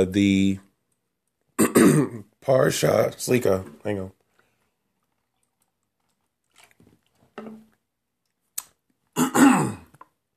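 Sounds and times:
speech: 0.0 - 0.6, 1.8 - 4.2
person clearing throat: 1.6 - 2.3, 9.2 - 9.9.

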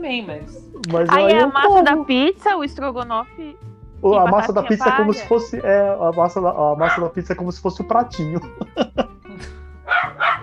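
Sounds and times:
speech: 0.0 - 9.6
laughter: 4.1 - 9.6
dog barking angrily: 9.9 - 10.4.

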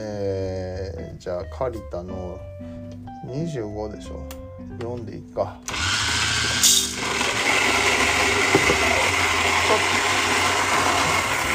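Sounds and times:
speech: 1.2 - 5.9, 6.6 - 7.4, 9.7 - 10.0
Kalita coffee grinder grinding beans coarsely for drip coffee: 5.7 - 11.5.

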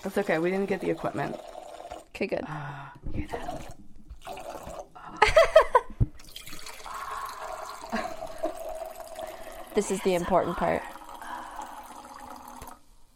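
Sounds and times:
speech: 0.0 - 1.6, 2.2 - 4.4, 9.8 - 10.9
drink pouring into a glass: 0.0 - 2.1, 3.3 - 4.9, 6.2 - 12.9.

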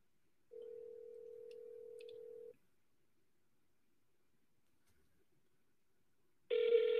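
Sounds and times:
buzzy electronic phone ringback tone: 0.5 - 2.5, 6.5 - 6.9.

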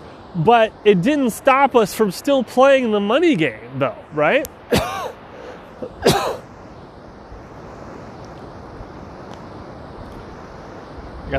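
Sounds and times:
speech: 0.4 - 4.8
person giving a loud raspy cough: 4.7 - 5.2, 5.9 - 6.4.

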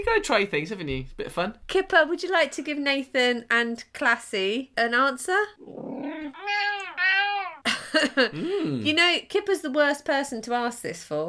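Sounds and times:
speech: 0.0 - 6.7, 8.0 - 11.2
male cat grumbling: 5.6 - 7.7
grumpy male cat yowling: 6.0 - 7.7.

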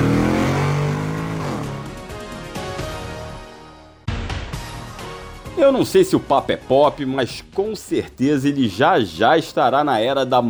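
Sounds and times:
car engine revving while shifting into first gear and accelerating: 0.0 - 2.7
speech: 5.6 - 10.4.

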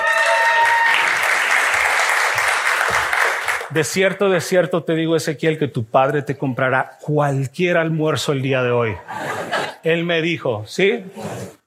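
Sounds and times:
audience applause: 0.0 - 3.7
speech: 3.7 - 11.6.

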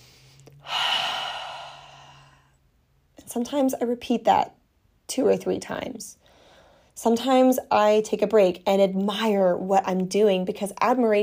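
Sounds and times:
deep breath: 0.0 - 2.7, 6.2 - 7.0
speech: 3.3 - 6.2, 7.0 - 11.2.

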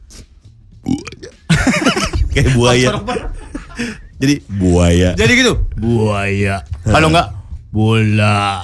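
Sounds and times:
person voicing an exaggerated fake burp: 0.8 - 1.5
laughter: 1.5 - 4.1
speech: 2.4 - 8.6.

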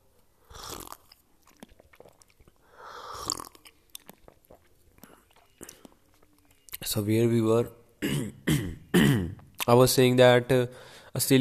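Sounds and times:
slurping sips of tea: 0.5 - 6.0
speech: 6.8 - 8.6, 9.7 - 11.3.

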